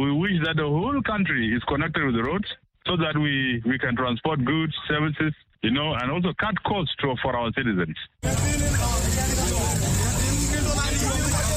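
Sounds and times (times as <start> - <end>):
speech: 0.4 - 9.4
babble of many voices in a bus park: 8.2 - 11.5
minibus engines rumbling in a busy bus park: 8.2 - 11.5.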